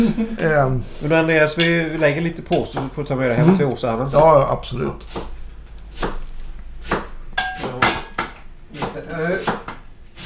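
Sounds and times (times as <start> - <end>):
speech: 0.0 - 5.4
clattering kitchen sounds: 1.4 - 3.9, 4.7 - 10.2
knife chopping leek on a cutting board: 4.9 - 10.2.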